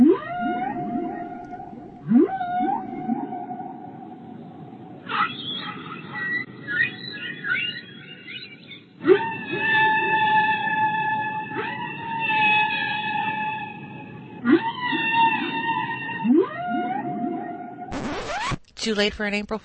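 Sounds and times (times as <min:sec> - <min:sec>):
low rumbling underwater background: 0:00.0 - 0:05.0
whale song: 0:00.0 - 0:17.9
speech: 0:18.9 - 0:19.6.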